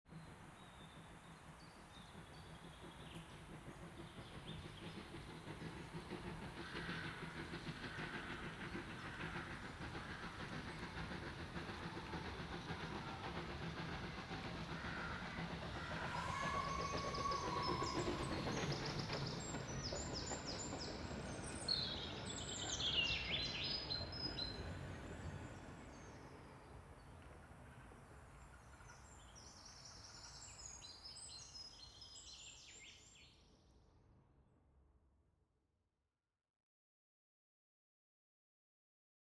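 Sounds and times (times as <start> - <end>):
train journey: 0.1 - 33.2.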